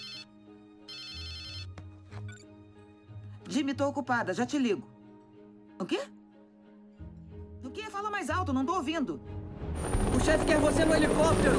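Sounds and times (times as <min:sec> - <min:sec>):
electronic telephone ringtone: 0:00.0 - 0:02.4
speech: 0:03.5 - 0:05.0, 0:05.8 - 0:06.2, 0:08.0 - 0:11.5.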